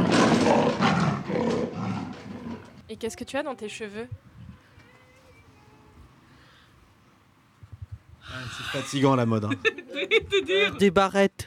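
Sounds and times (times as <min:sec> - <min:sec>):
raspy leopard roar from novelty sandals: 0:00.0 - 0:02.8
speech: 0:03.0 - 0:04.3, 0:08.4 - 0:11.4
laughter: 0:08.5 - 0:10.9.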